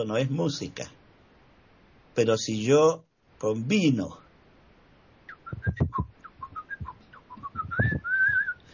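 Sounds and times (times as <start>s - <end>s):
speech: 0.0s - 1.0s, 2.2s - 4.2s
person whistling a short lively tune: 5.3s - 8.7s
soft low thumps: 5.4s - 8.5s.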